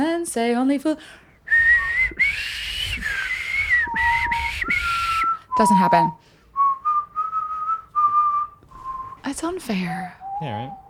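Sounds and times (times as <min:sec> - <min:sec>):
speech: 0:00.2 - 0:01.2, 0:05.6 - 0:06.2, 0:09.2 - 0:10.8
person whistling a slow melody: 0:01.5 - 0:09.3, 0:10.2 - 0:10.8.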